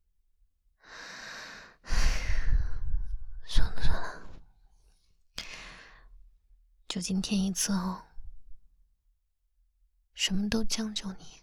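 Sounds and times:
person breathing: 0.8 - 3.1, 5.4 - 6.1
speech: 6.9 - 8.1, 10.3 - 11.4.

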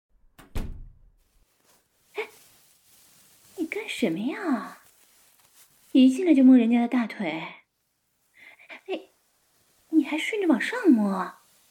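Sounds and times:
door pushed shut: 0.4 - 1.0
speech: 3.9 - 4.8, 6.0 - 7.6, 10.0 - 11.4.

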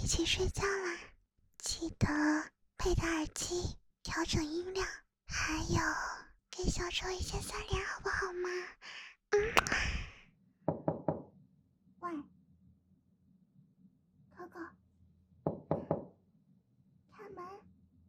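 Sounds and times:
speech: 0.1 - 0.8, 1.8 - 9.9, 12.1 - 12.3
sharp knocking on a door late at night: 10.7 - 11.3, 15.5 - 16.1.

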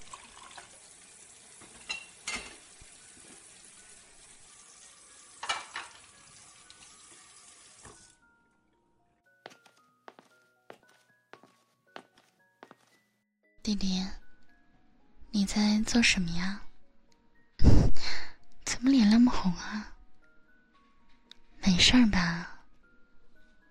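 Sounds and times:
water running from a tap: 0.0 - 8.2
dishes clinking and clattering as they are washed after a meal: 1.6 - 2.8, 5.4 - 6.2
speech: 13.7 - 14.2, 15.4 - 16.6, 19.4 - 20.0, 21.8 - 22.5.

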